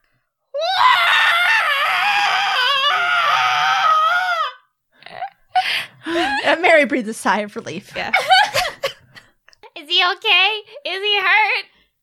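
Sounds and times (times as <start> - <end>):
human voice screeching imitating a crow's cry: 0.6 - 4.7
speech: 6.5 - 8.6, 10.0 - 11.7.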